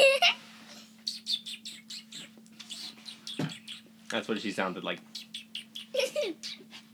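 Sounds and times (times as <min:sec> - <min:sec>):
person imitating pet bird tweeting with whistled notes: 0:01.1 - 0:03.9, 0:05.2 - 0:05.9
speech: 0:04.1 - 0:05.1.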